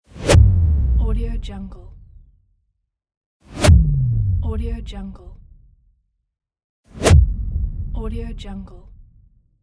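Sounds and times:
swish: 0:00.1 - 0:00.7, 0:03.4 - 0:04.0, 0:06.9 - 0:07.6
boom: 0:00.2 - 0:01.2, 0:03.6 - 0:04.5, 0:07.0 - 0:08.0.

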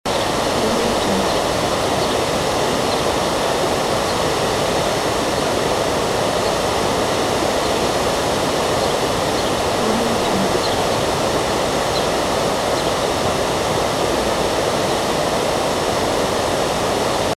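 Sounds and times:
birds: 0:00.1 - 0:04.4, 0:07.6 - 0:13.1
waterfall: 0:00.1 - 0:17.3.

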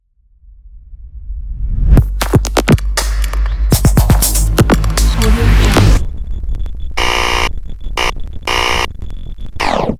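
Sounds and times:
dark glitch logo sound: 0:02.0 - 0:09.9.

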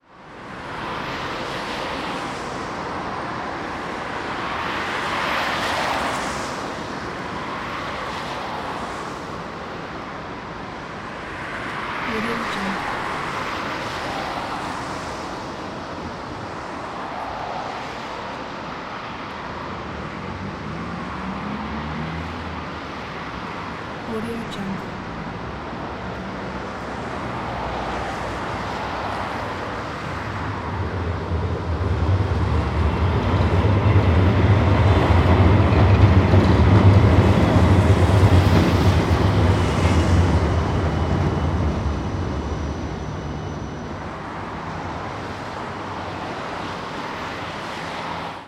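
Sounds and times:
traffic after rain: 0:00.0 - 0:48.4
trams after rain: 0:00.2 - 0:48.4.

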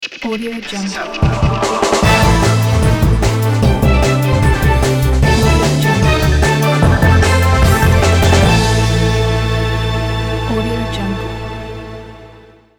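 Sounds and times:
modern orchestra action beat logo: 0:01.8 - 0:12.6.

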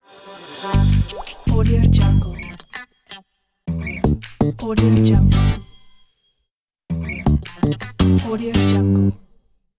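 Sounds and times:
catchy funny funky jingle music: 0:00.6 - 0:02.9, 0:03.7 - 0:05.9, 0:06.9 - 0:09.2.

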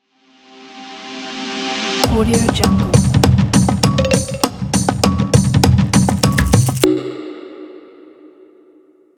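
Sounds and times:
percussion logo jingle: 0:02.1 - 0:07.2.

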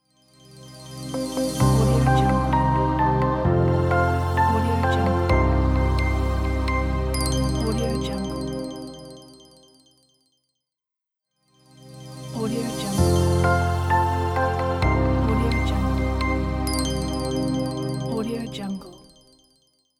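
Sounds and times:
sad inspiring background piano logo music: 0:01.1 - 0:09.1, 0:13.0 - 0:18.2.

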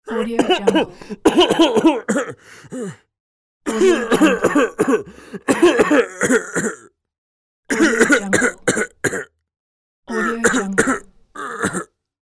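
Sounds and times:
old man coughing: 0:00.1 - 0:03.0, 0:03.7 - 0:06.9, 0:07.7 - 0:09.4, 0:10.1 - 0:11.9.

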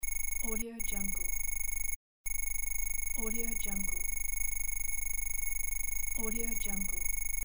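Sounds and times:
robot scanning: 0:00.2 - 0:02.5, 0:03.1 - 0:04.5, 0:05.4 - 0:07.4.

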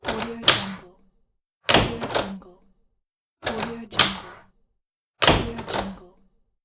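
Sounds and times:
door opening and closing: 0:00.0 - 0:00.9, 0:01.7 - 0:02.4, 0:03.4 - 0:04.5, 0:05.2 - 0:06.0.

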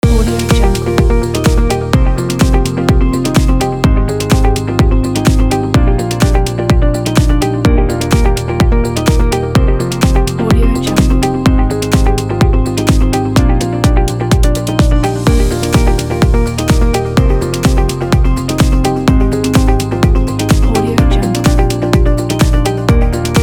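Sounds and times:
corporate music loop: 0:00.0 - 0:23.4.

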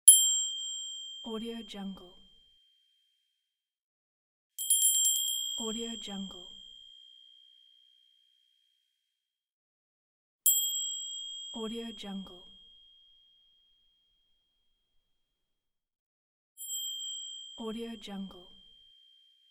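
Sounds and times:
crystal bell: 0:00.1 - 0:01.3, 0:04.6 - 0:07.7, 0:10.5 - 0:13.0, 0:16.6 - 0:19.4.

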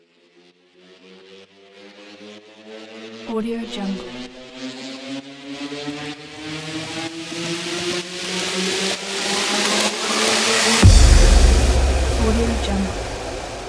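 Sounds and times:
rising uplifting build up transition: 0:06.5 - 0:13.6.

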